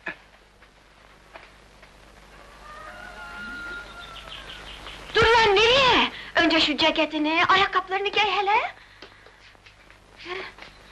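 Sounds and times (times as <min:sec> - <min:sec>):
quiet outdoor ambience: 0:00.0 - 0:10.9
rooster crowing: 0:02.3 - 0:05.5
speech: 0:06.6 - 0:08.8.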